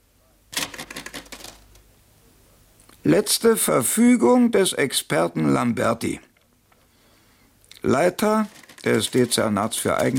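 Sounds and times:
typewriter typing: 0.5 - 1.8, 8.2 - 10.1
speech: 3.0 - 6.3, 7.8 - 10.1.

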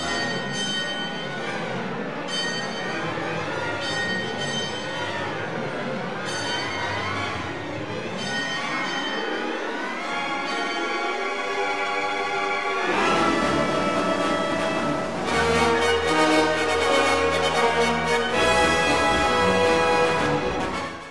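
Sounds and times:
mournful bell ringing without stopping: 0.0 - 20.8
constant rushing noise: 12.2 - 21.0.

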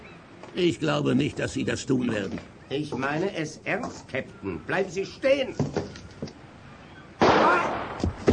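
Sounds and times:
speech: 0.5 - 6.1
gunshot shooting a revolver out of a hand: 7.2 - 8.3.

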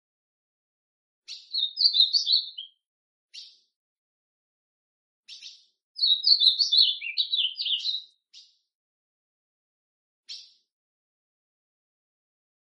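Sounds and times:
speech: 1.3 - 2.6
ultramarine grosbeak singing warbled phrases of slurred whistles: 1.3 - 3.7, 5.3 - 8.6, 10.3 - 10.6.

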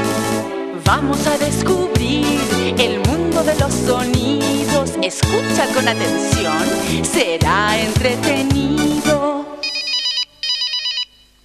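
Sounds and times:
speech: 0.9 - 9.5
telephone ringing with electronic warbling trills: 9.6 - 11.4.

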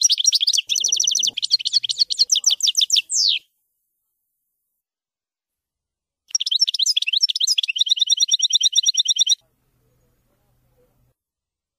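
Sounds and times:
European goldfinch twittering song: 0.0 - 3.5, 6.3 - 9.4.

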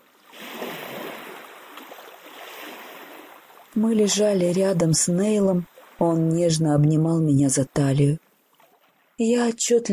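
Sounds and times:
waves splashing on a shore: 0.0 - 7.3
speech: 3.8 - 8.2, 9.2 - 9.9.

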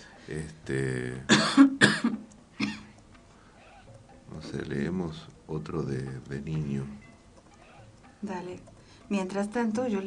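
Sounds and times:
speech: 0.3 - 2.3, 4.5 - 7.1, 8.2 - 10.0
person coughing harshly: 1.3 - 3.0.

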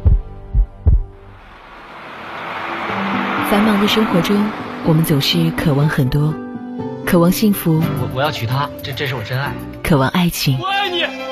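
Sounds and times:
heartbeat thumps: 0.0 - 1.2
speech: 3.5 - 6.4, 7.1 - 11.2.

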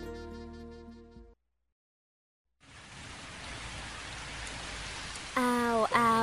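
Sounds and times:
light rain falling: 2.6 - 6.2.

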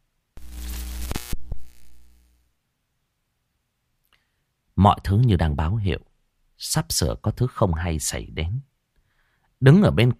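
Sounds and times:
electrical crackling and buzzing from a short circuit: 0.4 - 2.5
speech: 4.8 - 8.7, 9.6 - 10.1.

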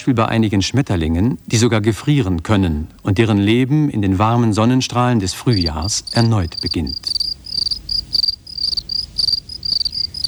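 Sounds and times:
speech: 0.0 - 7.4
crickets chirping: 5.1 - 10.2.

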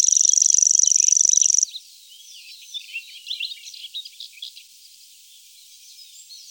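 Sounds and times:
common grasshopper warbler giving a high ticking reel in Germany, Austria, Switzerland: 0.0 - 1.6
faint assorted bird chirping: 0.0 - 6.4.

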